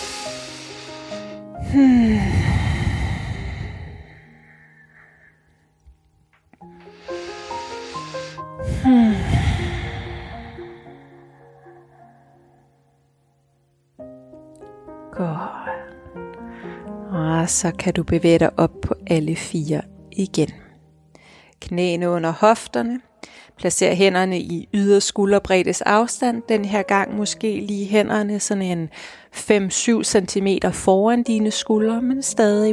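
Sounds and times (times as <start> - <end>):
slow deep breathing in and out: 0.0 - 5.7, 6.8 - 13.1, 15.4 - 17.0, 21.1 - 21.6
soft instrumental music: 0.0 - 21.4, 25.6 - 28.8, 30.4 - 32.7
speech: 1.7 - 2.6, 17.5 - 20.6, 21.6 - 32.7.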